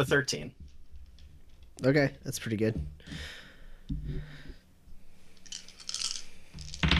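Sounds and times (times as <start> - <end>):
speech: 0.0 - 0.6, 1.8 - 4.4
fistful of d20 dice rattling across a hard surface: 5.4 - 6.9.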